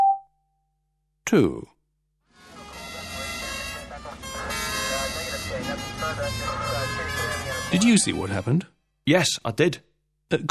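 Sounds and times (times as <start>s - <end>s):
speech: 1.3s - 1.7s, 5.7s - 10.5s
ambulance siren: 2.3s - 8.4s.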